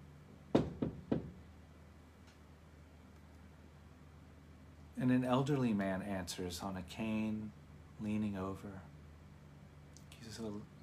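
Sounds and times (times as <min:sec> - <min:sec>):
firm knocks on a wooden door: 0:00.5 - 0:01.4
speech: 0:05.0 - 0:08.9, 0:10.3 - 0:10.7.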